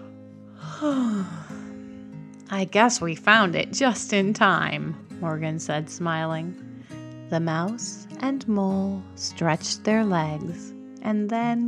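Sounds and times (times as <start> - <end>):
drawn-out yawn with breathy falling moan: 0.6 - 1.6
speech: 0.8 - 1.5, 2.5 - 6.7, 7.3 - 11.6.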